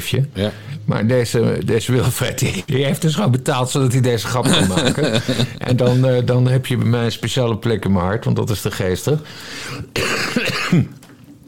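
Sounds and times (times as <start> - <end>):
speech: 0.0 - 11.0
laughter: 4.2 - 6.2
person coughing harsh throaty bursts: 4.4 - 6.0, 9.7 - 11.0
person clearing throat: 9.9 - 11.0.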